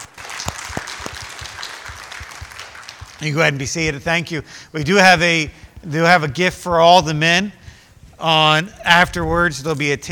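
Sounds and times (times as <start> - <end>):
audience applause at a gathering: 0.0 - 3.5
speech: 3.2 - 7.6, 8.2 - 10.1.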